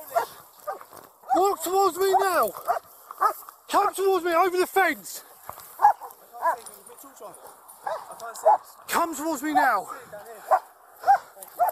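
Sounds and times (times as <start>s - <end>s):
police dog barking: 0.1s - 1.4s, 2.1s - 3.4s, 5.8s - 6.6s, 7.8s - 8.7s, 10.5s - 11.6s
man shouting commands: 1.3s - 2.6s, 3.7s - 5.2s, 8.3s - 9.9s
speech: 1.4s - 5.3s, 6.6s - 10.7s.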